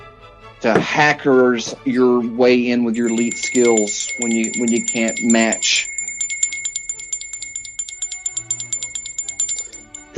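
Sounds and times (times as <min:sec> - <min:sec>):
speech: 0:00.6 - 0:05.9
bell ringing rapidly: 0:02.9 - 0:10.1.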